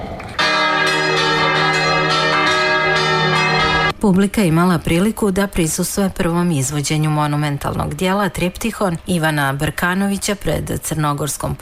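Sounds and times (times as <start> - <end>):
church bells pealing at a festival performance in Kotor: 0.4 - 4.0
speech: 4.0 - 11.6.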